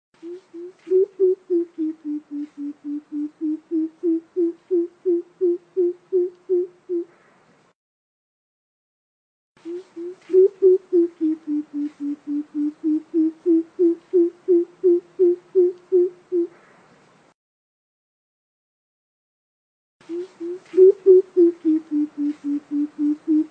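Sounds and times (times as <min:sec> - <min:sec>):
coucal giving deep hollow hoots: 0:00.2 - 0:07.2, 0:09.6 - 0:16.6, 0:20.1 - 0:23.4.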